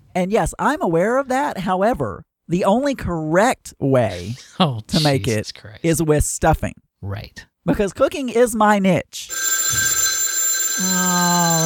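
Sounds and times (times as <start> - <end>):
speech: 0.2 - 10.0, 10.8 - 11.6
telephone ringing with an incoming call: 9.3 - 11.6.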